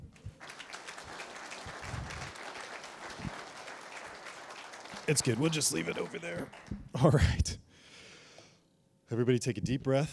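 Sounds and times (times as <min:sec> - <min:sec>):
group of people clapping: 0:00.0 - 0:07.2
speech: 0:05.1 - 0:07.6, 0:09.1 - 0:10.1.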